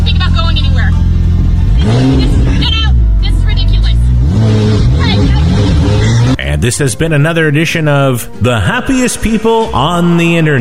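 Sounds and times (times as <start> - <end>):
car engine revving in a residential neighborhood: 0.0 - 7.2
speech: 6.6 - 10.5.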